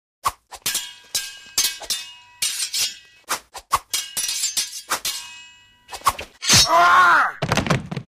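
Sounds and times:
swords clashing in a fight between two people: 0.6 - 7.2
person screaming: 6.5 - 7.4
body falling: 7.3 - 8.1.

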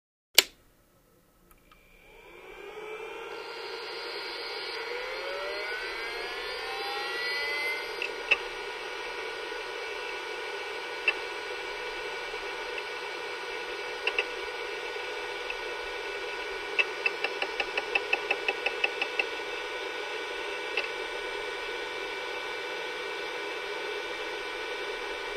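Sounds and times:
computer hard drive turning on and off: 1.6 - 25.3.

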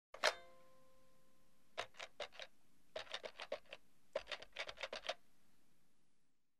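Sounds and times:
telephone number being dialed: 1.8 - 5.2.

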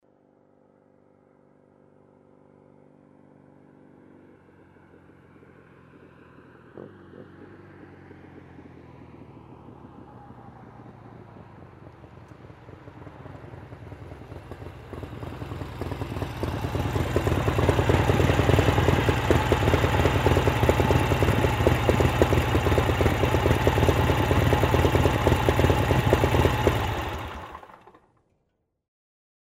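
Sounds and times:
Harley-Davidson motorcycle approaching, idling and turning off: 0.1 - 28.2.

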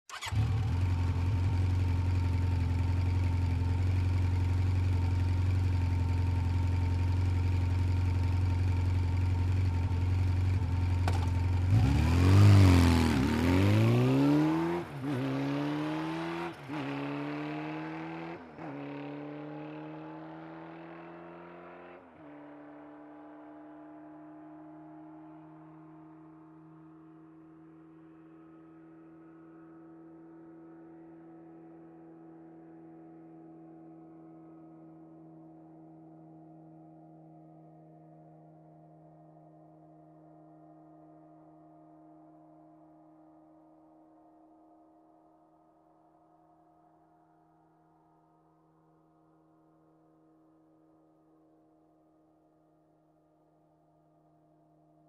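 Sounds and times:
motorcycle starting, idling and driving off quickly: 0.1 - 33.3.

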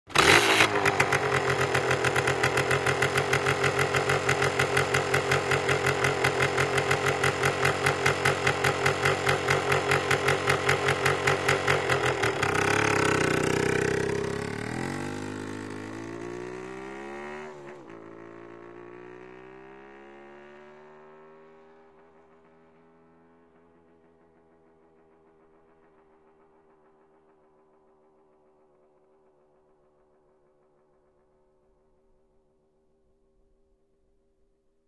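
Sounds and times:
motorcycle starting: 0.1 - 18.2
motorcycle driving away: 0.1 - 26.9.

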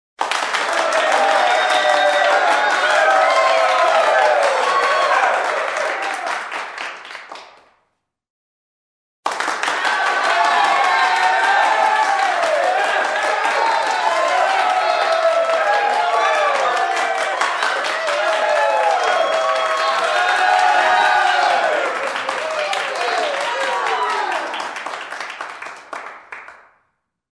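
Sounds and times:
small crowd applauding loudly indoors: 0.2 - 7.7, 9.3 - 26.8.

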